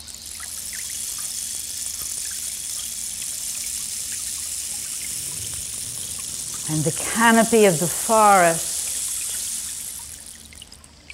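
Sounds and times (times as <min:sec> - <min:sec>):
wide stream rushing over rocks in a forest clearing: 0:04.7 - 0:09.8
speech: 0:06.7 - 0:08.7.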